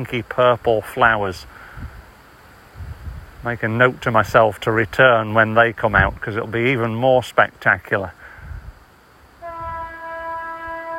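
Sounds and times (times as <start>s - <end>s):
speech: 0.0s - 1.6s, 3.4s - 8.2s
rail noise rumble: 0.0s - 10.9s
train horn blast: 9.4s - 10.9s.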